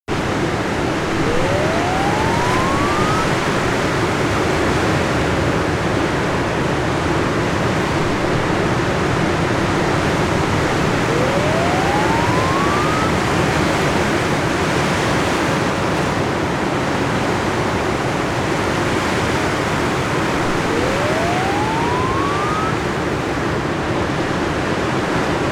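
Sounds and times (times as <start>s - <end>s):
wind on beach: 0.0s - 25.5s
waves on beach: 1.0s - 4.7s, 10.6s - 14.0s, 14.6s - 23.4s.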